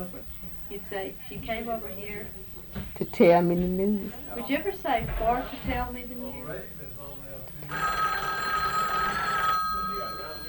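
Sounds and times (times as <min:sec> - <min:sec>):
speech: 0:00.0 - 0:06.8
faint voices murmuring: 0:01.8 - 0:10.4
telephone bell ringing in a bright trilling burst: 0:07.7 - 0:10.4.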